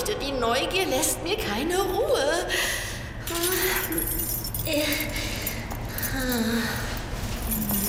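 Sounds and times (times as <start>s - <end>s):
speech: 0.1s - 5.4s, 6.2s - 7.0s
metallic jingling of a key being handled: 3.2s - 7.8s.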